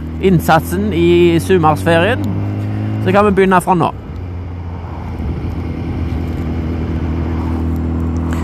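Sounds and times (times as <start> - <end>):
motorcycle engine drone while riding at speed: 0.0 - 8.4
speech: 0.2 - 2.4, 3.0 - 4.0
rushing wind noise while riding a motorcycle: 2.2 - 8.4.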